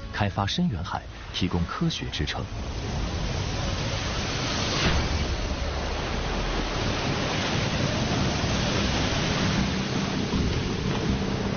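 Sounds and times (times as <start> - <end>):
waves crashing in a typhoon storm at sea: 0.0 - 11.5
speech: 0.2 - 3.2
howling wind of a typhoon storm at sea: 1.0 - 11.5.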